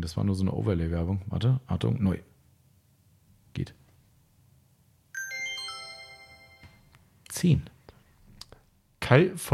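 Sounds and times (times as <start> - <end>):
speech: 0.0 - 2.3, 3.6 - 3.8, 7.4 - 7.8, 9.1 - 9.5
bright electronic chime from a played video: 5.2 - 6.9.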